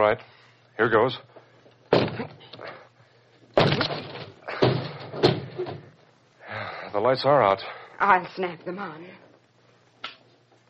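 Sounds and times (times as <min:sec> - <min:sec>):
speech: 0:00.0 - 0:01.3, 0:06.9 - 0:09.2
study door being forced open with bangs and shoves: 0:01.9 - 0:02.5, 0:03.6 - 0:06.0.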